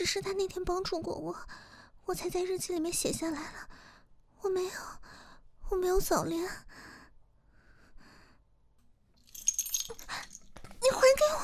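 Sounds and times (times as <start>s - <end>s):
speech: 0.0s - 6.9s
faint clinks: 9.2s - 10.6s
keys on a keychain jangling: 9.2s - 10.6s.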